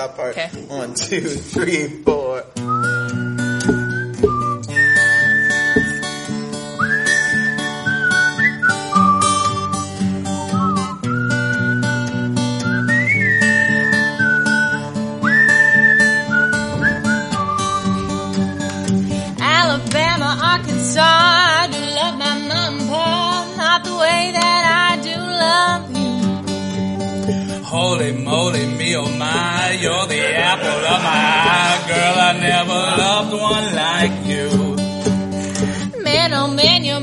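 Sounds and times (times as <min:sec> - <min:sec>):
speech: 0:00.0 - 0:02.9
strummed instrumental backing: 0:00.5 - 0:37.0
people whistling a melody: 0:02.6 - 0:19.1, 0:26.0 - 0:27.6, 0:35.0 - 0:36.8
laughter: 0:29.8 - 0:33.1.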